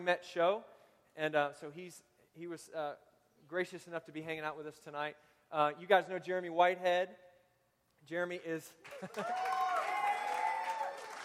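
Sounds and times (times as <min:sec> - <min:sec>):
speech: 0:00.0 - 0:07.2, 0:08.0 - 0:09.6
crowd clapping: 0:08.8 - 0:11.2.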